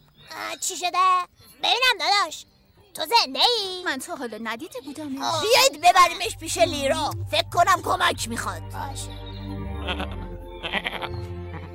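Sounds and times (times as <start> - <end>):
speech: 0.6 - 9.2, 9.8 - 11.4
sheep bleating: 9.8 - 11.7.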